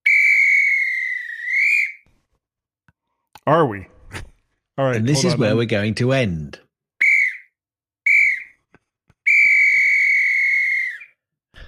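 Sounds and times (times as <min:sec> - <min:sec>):
rugby referee whistle blasts: 0:00.0 - 0:02.0, 0:07.0 - 0:08.6, 0:09.2 - 0:11.2
speech: 0:03.4 - 0:04.0, 0:04.8 - 0:06.6.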